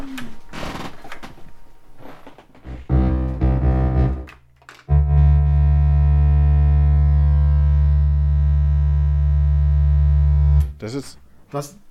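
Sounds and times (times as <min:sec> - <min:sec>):
bicycle LED blinker light flicker made audible as electrical hum: 0:02.6 - 0:04.3, 0:04.9 - 0:10.8
speech: 0:10.9 - 0:11.8.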